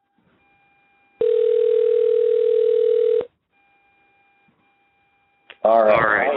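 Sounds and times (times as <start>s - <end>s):
loud steady electronic ringing tone: 1.2s - 3.3s
speech: 5.6s - 5.9s.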